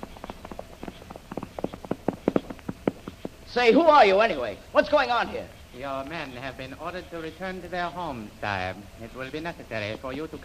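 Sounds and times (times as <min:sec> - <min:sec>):
horse hoofbeats: 0:00.0 - 0:04.1
speech: 0:03.6 - 0:10.4.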